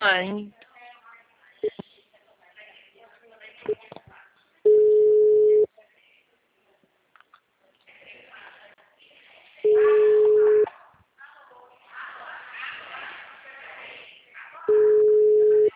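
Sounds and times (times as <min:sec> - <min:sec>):
people talking: 0:00.0 - 0:06.9, 0:07.7 - 0:15.7
ringback tone of an unanswered outgoing phone call: 0:04.7 - 0:05.7, 0:09.7 - 0:10.6, 0:14.7 - 0:15.7.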